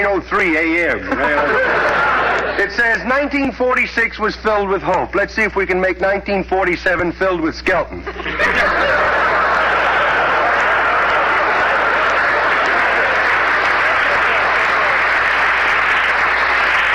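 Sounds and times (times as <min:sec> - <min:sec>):
laughter: 0:00.0 - 0:03.7, 0:07.9 - 0:16.9
speech: 0:00.0 - 0:09.2
studio audience applause: 0:01.1 - 0:02.7, 0:08.4 - 0:16.9.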